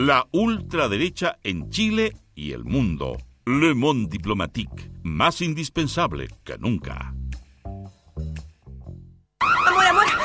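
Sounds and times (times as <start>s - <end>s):
speech: 0.0s - 7.2s
security alarm blaring in a loud continuous warbling tone: 9.4s - 10.2s.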